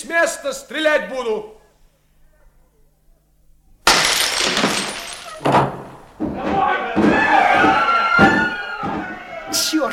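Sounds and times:
speech: 0:00.0 - 0:01.6
debris rattling: 0:03.9 - 0:06.3
door forced open with a loud crash: 0:03.9 - 0:09.1
voices shouting: 0:06.2 - 0:09.9.

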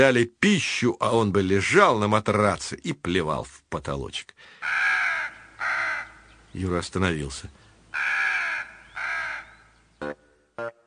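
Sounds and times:
speech: 0:00.0 - 0:04.9, 0:06.5 - 0:08.2
black birds cawing overhead: 0:04.4 - 0:06.6, 0:07.6 - 0:10.2.

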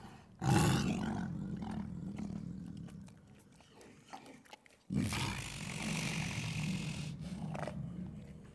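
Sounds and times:
tiger making deep rough sounds while eating: 0:00.4 - 0:03.2, 0:04.9 - 0:08.5.

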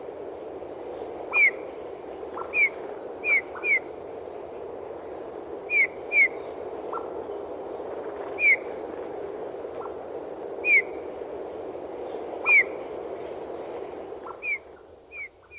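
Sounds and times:
steady low hiss: 0:00.0 - 0:15.5
Eurasian bullfinch Pyrrhula pyrrhula calling with mellow falling whistled notes: 0:01.3 - 0:01.6, 0:02.4 - 0:03.9, 0:05.7 - 0:07.1, 0:10.6 - 0:11.0, 0:12.4 - 0:12.8, 0:14.2 - 0:15.5.

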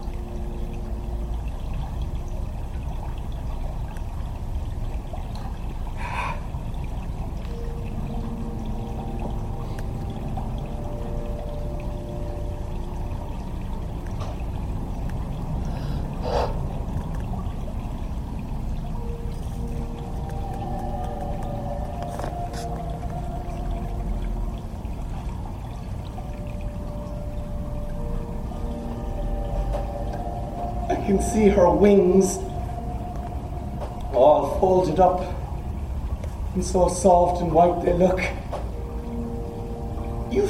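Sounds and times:
river water flowing: 0:00.0 - 0:40.4
speech: 0:31.1 - 0:32.4, 0:34.6 - 0:35.4, 0:36.6 - 0:38.4.

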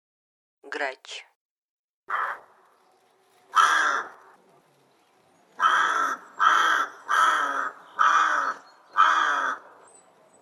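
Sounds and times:
speech: 0:00.7 - 0:01.3, 0:02.1 - 0:02.4
rook giving harsh raspy caws in Russia: 0:02.1 - 0:02.6, 0:03.5 - 0:04.4, 0:05.6 - 0:09.8.

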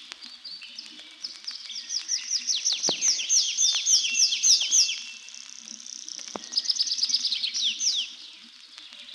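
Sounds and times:
Tree Pipit singing in flight over forest edges and overgrown clearings: 0:01.3 - 0:08.2
clicks: 0:05.3 - 0:06.7.

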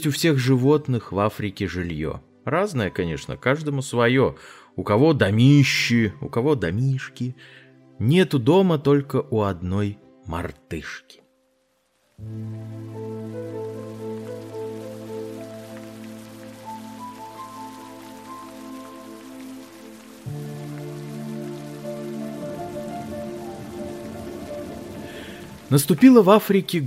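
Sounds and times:
speech: 0:00.0 - 0:11.2, 0:12.2 - 0:14.1, 0:25.7 - 0:26.8
heavy rain pouring down: 0:11.7 - 0:26.8.

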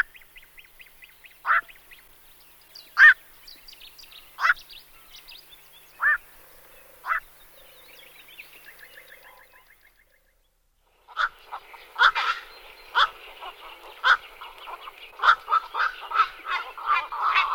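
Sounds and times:
Black-crowned night heron Nycticorax nycticorax giving hoarse barking calls and croaks: 0:03.0 - 0:03.2, 0:04.4 - 0:04.6, 0:06.0 - 0:06.2, 0:07.0 - 0:07.3, 0:11.1 - 0:14.3, 0:15.2 - 0:17.5.

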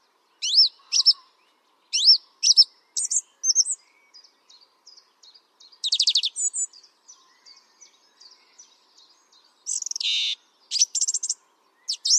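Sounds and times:
song thrush singing: 0:00.0 - 0:12.1.

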